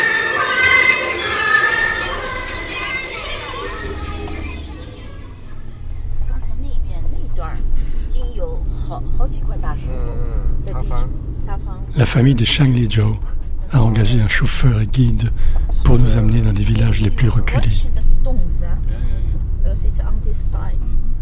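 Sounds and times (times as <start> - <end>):
garbage truck playing traditional music through loudspeaker: 0.0 - 4.1
garbage truck engine rumbling: 0.0 - 21.1
street bustle: 0.0 - 21.1
speech: 12.1 - 13.3, 13.9 - 21.0.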